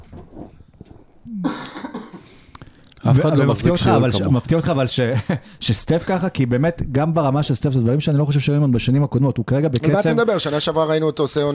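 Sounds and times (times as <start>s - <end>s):
rough harsh cough: 1.3s - 2.4s
speech: 3.1s - 11.5s.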